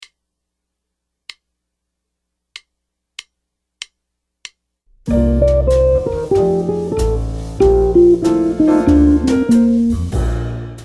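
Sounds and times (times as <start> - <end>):
jazz guitar playing ii V I licks: 5.1 - 10.5.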